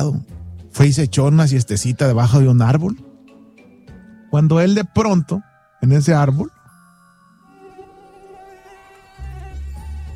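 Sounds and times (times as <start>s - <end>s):
speech: 0.0s - 3.1s, 4.3s - 6.6s
mosquito whining around the head of a napping lion: 7.4s - 10.1s.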